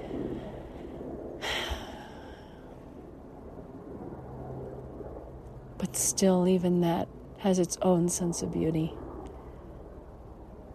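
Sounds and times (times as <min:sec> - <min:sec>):
breathy rush of noise: 0:00.0 - 0:04.0
small plane droning: 0:00.0 - 0:10.7
speech: 0:05.8 - 0:09.0.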